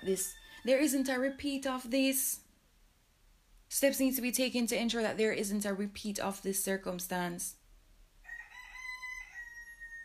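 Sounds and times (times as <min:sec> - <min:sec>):
speech: 0:00.0 - 0:02.4, 0:03.7 - 0:07.6
rooster crowing: 0:00.2 - 0:00.9, 0:08.2 - 0:10.0.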